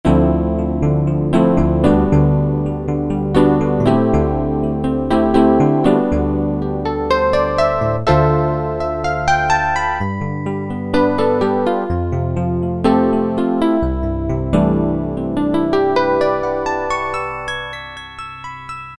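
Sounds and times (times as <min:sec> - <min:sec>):
Roland D-110 electric piano factory patches: 0:00.0 - 0:18.9.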